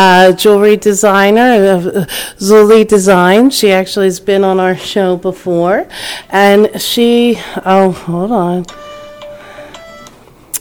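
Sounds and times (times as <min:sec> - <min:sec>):
speech: 0:00.0 - 0:08.9
phone electronic ringtone for an incoming call: 0:08.7 - 0:10.2.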